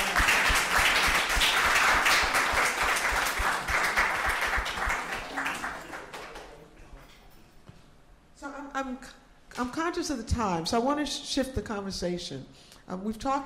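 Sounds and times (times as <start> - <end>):
audience applauding: 0.0 - 6.7
speech: 10.0 - 13.4.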